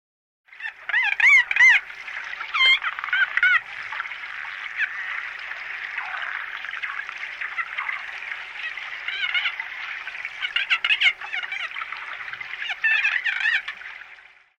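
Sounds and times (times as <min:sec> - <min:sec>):
Pacific white-sided dolphin chatter: 0:00.6 - 0:13.9.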